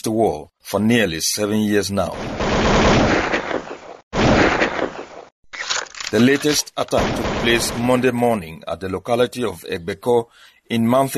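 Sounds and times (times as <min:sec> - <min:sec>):
speech: 0:00.0 - 0:03.4, 0:06.1 - 0:11.1
booming explosion: 0:02.2 - 0:05.0
sharp gunshot: 0:02.2 - 0:05.3, 0:07.0 - 0:08.1.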